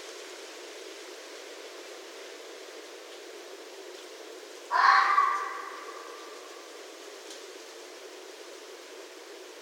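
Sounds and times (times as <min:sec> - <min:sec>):
faint hiss: 0:00.0 - 0:09.6
red fox screaming: 0:04.7 - 0:06.5.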